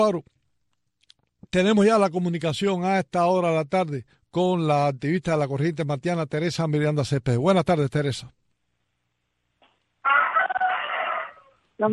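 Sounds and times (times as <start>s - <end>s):
speech: 0.0s - 0.4s, 1.5s - 8.4s
rooster crowing: 10.0s - 11.6s.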